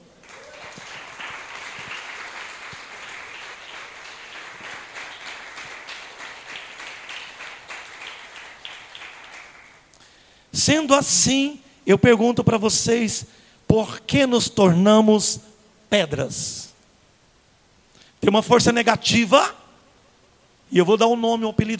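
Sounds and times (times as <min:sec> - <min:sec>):
audience applauding: 0:00.0 - 0:09.9
speech: 0:10.6 - 0:16.7, 0:18.2 - 0:19.6, 0:20.7 - 0:21.7.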